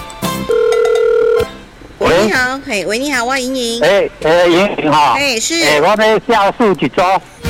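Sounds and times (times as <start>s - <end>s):
electronic phone chimes for incoming call: 0.4s - 1.6s
speech: 2.3s - 7.3s.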